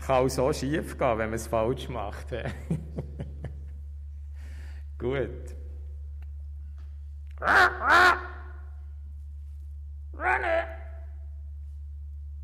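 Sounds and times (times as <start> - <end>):
low steady hum: 0.0 - 12.4
speech: 0.1 - 3.1, 5.0 - 5.6, 7.4 - 8.2
crow cawing: 7.4 - 8.7, 10.2 - 11.0.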